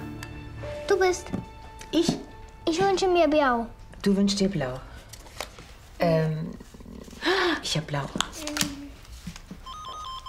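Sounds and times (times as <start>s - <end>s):
speech: 0.9s - 4.9s, 6.0s - 6.4s, 7.6s - 8.5s
electronic telephone ring: 9.6s - 10.2s.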